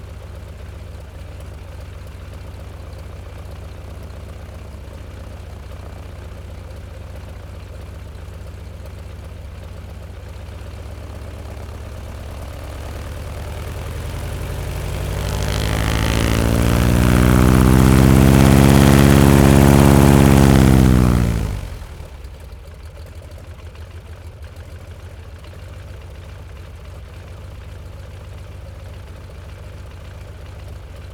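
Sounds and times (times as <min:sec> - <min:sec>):
acceleration from the side: 0:10.5 - 0:22.6.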